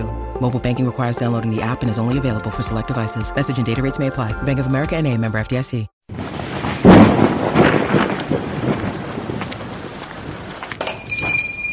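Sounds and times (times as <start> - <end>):
speech: 0.0 - 6.0
heavy monsoon rain: 6.1 - 11.2
sharp thunderclap: 6.1 - 11.5.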